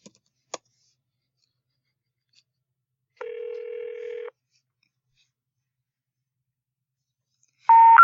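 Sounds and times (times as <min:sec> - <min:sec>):
electronic telephone tone on a home landline: 0:03.2 - 0:04.3, 0:07.7 - 0:08.0.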